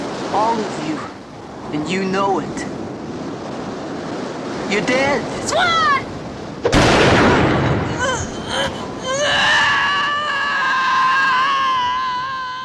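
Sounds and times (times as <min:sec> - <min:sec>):
speech: 0:00.3 - 0:02.8, 0:04.7 - 0:07.3
gunshot in a film fight scene: 0:06.6 - 0:07.8
wavering strained cry: 0:07.9 - 0:12.6.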